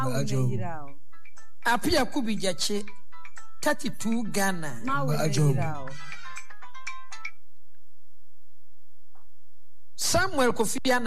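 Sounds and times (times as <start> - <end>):
speech: 0.0 - 0.9, 1.6 - 3.0, 3.6 - 6.2, 10.0 - 11.0
phone melodic ringtone: 1.1 - 1.7, 4.2 - 7.4.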